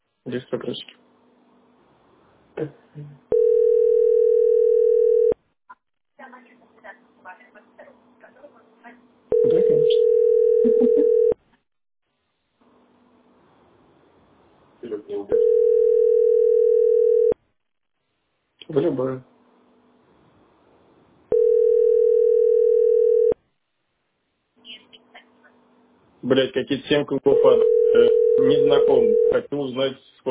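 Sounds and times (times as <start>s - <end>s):
speech: 0.2s - 1.0s, 2.6s - 3.4s, 9.3s - 11.3s, 18.7s - 19.3s, 26.2s - 30.2s
telephone dial tone while a call is being placed: 3.3s - 5.4s, 9.3s - 11.4s, 15.4s - 17.4s, 21.3s - 23.4s, 27.4s - 29.4s.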